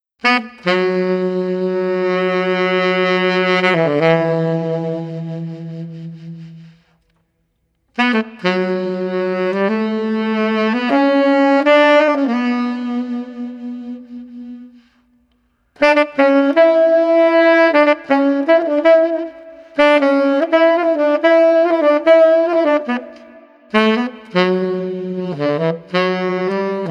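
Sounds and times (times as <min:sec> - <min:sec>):
pensive street tenor sax melody at 80 bpm: 0:00.2 - 0:07.2, 0:07.8 - 0:26.8.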